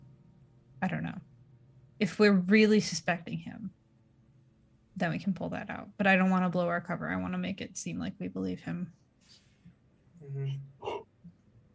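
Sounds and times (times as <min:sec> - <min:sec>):
speech: 0:02.0 - 0:03.6, 0:05.0 - 0:09.4, 0:10.2 - 0:11.0
person yawning: 0:10.3 - 0:11.0.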